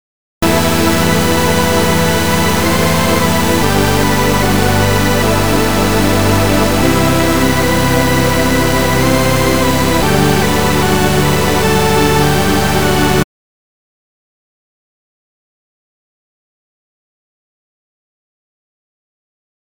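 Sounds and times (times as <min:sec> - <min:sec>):
sub bass noise: 0:00.4 - 0:13.2.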